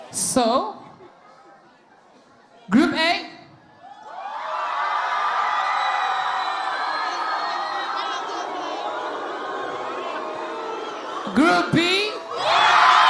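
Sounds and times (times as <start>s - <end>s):
speech: 0.1s - 0.8s
large crowd screaming and cheering for a group in a contest: 3.8s - 11.6s, 12.2s - 13.0s.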